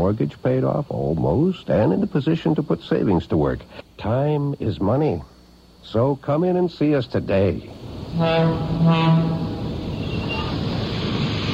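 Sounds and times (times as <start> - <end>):
speech: 0.0 - 9.4
train horn blast: 8.1 - 10.6.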